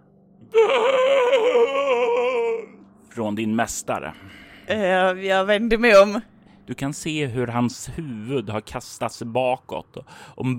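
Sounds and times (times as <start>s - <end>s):
speech: 0.5s - 1.8s, 3.2s - 10.5s
man groaning with a rough throaty edge: 0.5s - 2.8s.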